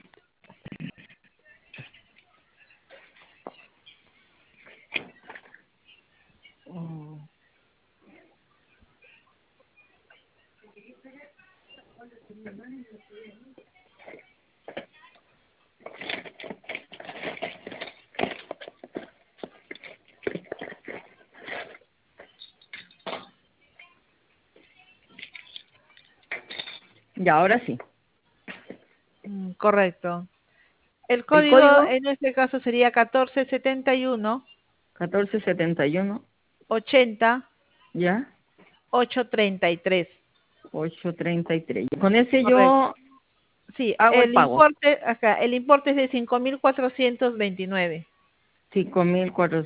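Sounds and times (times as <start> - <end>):
speech: 12.4 - 14.2, 27.2 - 27.9, 29.6 - 30.3, 31.1 - 38.3, 38.9 - 43.0, 43.8 - 48.1, 48.7 - 49.6
small objects clattering as someone rummages looking for a pencil: 15.8 - 23.4.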